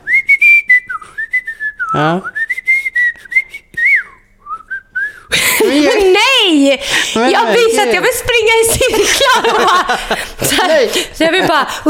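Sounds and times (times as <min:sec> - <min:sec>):
person whistling a wandering tuneless melody: 0:00.0 - 0:05.3
speech: 0:01.9 - 0:02.4, 0:06.6 - 0:11.8
laughter: 0:05.3 - 0:06.6, 0:08.5 - 0:11.8.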